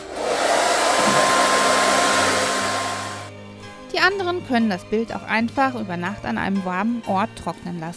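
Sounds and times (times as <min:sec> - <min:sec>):
hair dryer blowing with faint motor hum: 0:00.0 - 0:03.4
speech: 0:04.0 - 0:07.9.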